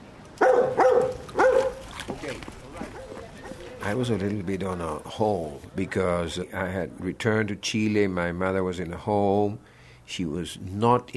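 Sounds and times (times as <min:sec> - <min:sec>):
dog barking: 0:00.4 - 0:01.8
speech: 0:03.9 - 0:11.1.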